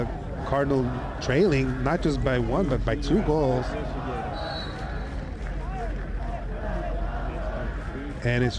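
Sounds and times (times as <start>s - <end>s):
murmur of a large hushed football crowd: 0.0s - 8.5s
small group of visiting Irish fans cheering and shouting at a football match: 0.0s - 8.5s
speech: 0.5s - 4.2s, 8.2s - 8.5s.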